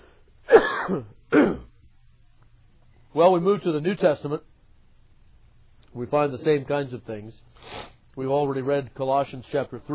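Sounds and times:
throat clearing from a tickle in the throat: 0:00.5 - 0:01.7
speech: 0:00.9 - 0:01.6, 0:03.2 - 0:04.5, 0:06.0 - 0:09.9.

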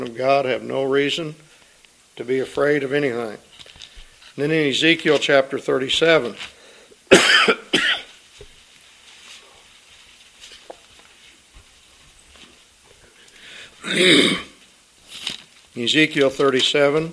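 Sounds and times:
speech: 0:00.1 - 0:01.5, 0:02.2 - 0:03.5, 0:04.4 - 0:07.6, 0:14.0 - 0:14.5, 0:15.8 - 0:17.1
person coughing: 0:07.1 - 0:08.1, 0:13.8 - 0:14.6
throat clearing: 0:13.8 - 0:14.6.

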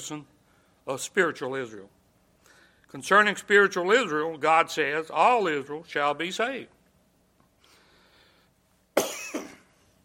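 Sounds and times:
speech: 0:00.0 - 0:02.0, 0:02.9 - 0:06.8
man coughing harshly: 0:09.0 - 0:09.9.

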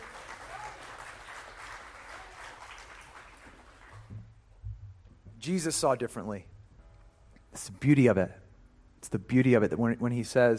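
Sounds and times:
audience clapping: 0:00.0 - 0:04.4
speech: 0:05.4 - 0:06.5, 0:07.6 - 0:08.4, 0:09.0 - 0:10.5.

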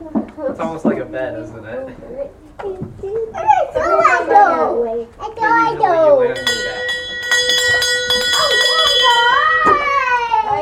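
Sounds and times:
speech: 0:00.4 - 0:06.7
child talking: 0:02.2 - 0:06.4, 0:08.4 - 0:10.6
hand bell ringing: 0:06.4 - 0:10.0.

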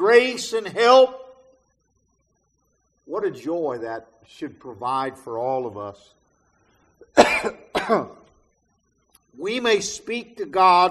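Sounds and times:
speech: 0:00.1 - 0:01.2, 0:03.1 - 0:06.2, 0:07.2 - 0:08.2, 0:09.4 - 0:10.8
person coughing: 0:07.1 - 0:08.2.

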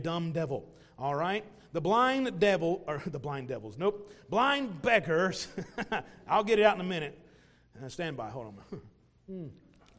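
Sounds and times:
speech: 0:00.0 - 0:07.2, 0:07.8 - 0:09.6
preacher gulping a swig of water: 0:09.3 - 0:09.9.

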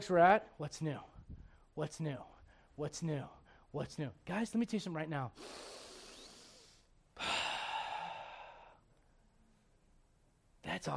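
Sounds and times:
speech: 0:00.0 - 0:01.1, 0:01.8 - 0:05.8
slow deep breathing close to the mic: 0:01.2 - 0:02.8, 0:05.4 - 0:09.3.

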